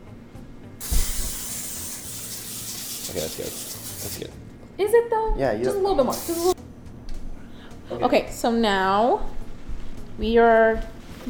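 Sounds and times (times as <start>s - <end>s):
aerosol can spraying cooking oil onto a baking tray: 0.8s - 4.3s, 6.1s - 6.6s
speech: 3.1s - 6.5s, 8.0s - 9.4s, 10.2s - 11.2s.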